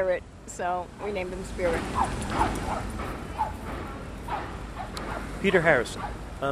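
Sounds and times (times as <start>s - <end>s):
speech: 0.0s - 3.1s, 5.4s - 6.5s
dog barking: 1.8s - 6.2s.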